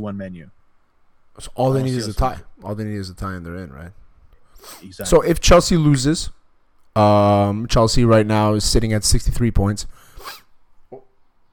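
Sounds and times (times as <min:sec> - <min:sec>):
speech: 0:00.0 - 0:00.6, 0:01.4 - 0:04.0, 0:04.6 - 0:10.4
stifled almost-sneeze: 0:10.2 - 0:10.5.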